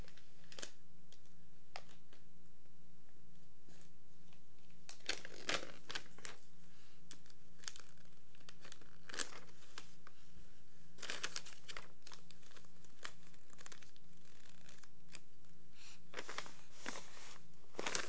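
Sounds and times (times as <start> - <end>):
book pages being turned: 4.9 - 6.5, 7.1 - 10.1, 11.0 - 15.3, 16.1 - 18.0.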